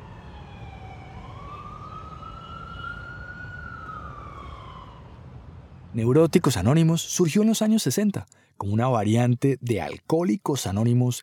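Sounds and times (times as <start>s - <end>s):
emergency vehicle siren wailing: 0.0s - 5.7s
low rumble of city traffic: 0.0s - 7.3s
speech: 6.0s - 11.2s.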